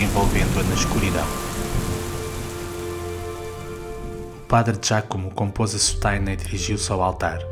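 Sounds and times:
heavy rain falling on a roof: 0.0 - 4.4
speech: 0.2 - 1.8, 4.5 - 7.4.

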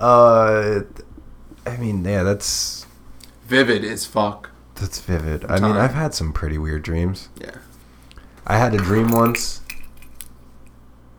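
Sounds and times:
speech: 0.0 - 1.0, 1.7 - 2.9, 3.5 - 7.7, 8.4 - 9.6
steady low hum: 0.0 - 11.1
keys jangling: 8.9 - 10.4.

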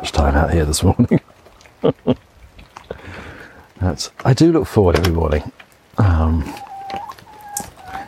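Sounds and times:
speech: 0.0 - 2.2, 4.0 - 5.6
chickens clucking as they are let out in the morning: 0.0 - 8.0
hard rain: 0.0 - 8.0
loud drawn-out chicken squawk: 6.4 - 8.0.

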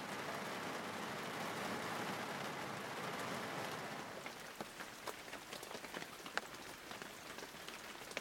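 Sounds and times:
steady rain: 0.0 - 8.1.

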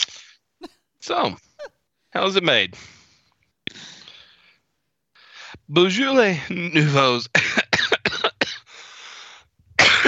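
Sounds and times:
speech: 0.6 - 1.5, 2.1 - 3.0, 5.7 - 7.6
harsh coughs: 7.3 - 8.7, 9.8 - 10.0.

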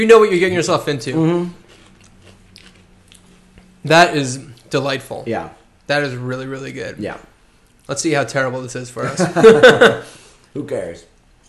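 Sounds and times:
speech: 0.0 - 1.6, 3.8 - 7.3, 7.9 - 11.1
chewing and biting food with crisp crunches: 1.6 - 3.7
laughter: 9.0 - 10.1.

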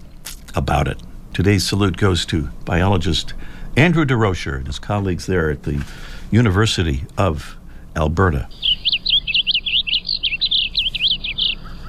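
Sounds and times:
speech: 0.6 - 8.7
blue grosbeak song: 8.2 - 11.8.

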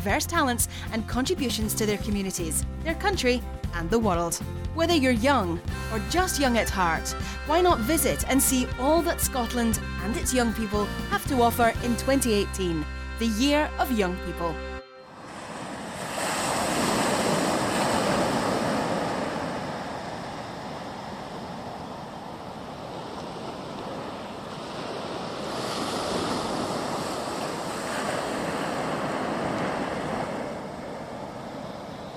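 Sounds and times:
speech: 0.0 - 14.7
waves rolling onto a beach: 15.2 - 32.1.

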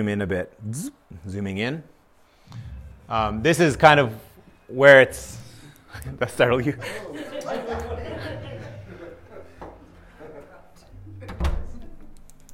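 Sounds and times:
speech: 0.0 - 8.1
soft laughter: 6.8 - 12.0
door thudding shut: 11.2 - 12.0.

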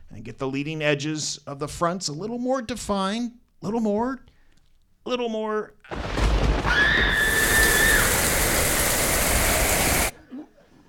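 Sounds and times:
speech: 0.2 - 4.3, 5.0 - 6.0
loud dense rain hiss made above a kitchen sink: 6.8 - 10.2.

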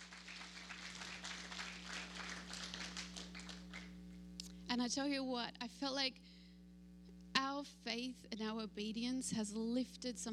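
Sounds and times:
crowd applauding in a large room: 0.0 - 4.0
faint low electrical hum: 0.0 - 10.3
speech: 4.8 - 6.2, 7.6 - 10.3.

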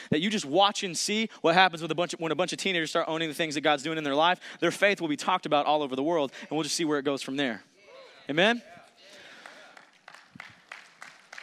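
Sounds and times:
speech: 0.1 - 7.7, 8.3 - 8.7
audience clapping in a reverberant room: 9.1 - 11.4.

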